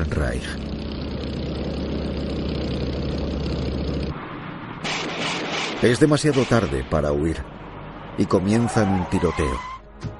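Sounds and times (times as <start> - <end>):
motorcycle engine of a rider leading a World War II German armored column: 0.0 - 4.1
speech: 0.1 - 1.4, 5.8 - 7.6, 8.2 - 10.1.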